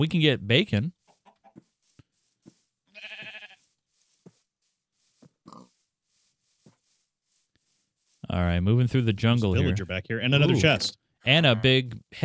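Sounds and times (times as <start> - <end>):
speech: 0.0 - 1.0, 8.3 - 12.2
video game sheep bleating: 2.9 - 3.8, 9.4 - 12.0.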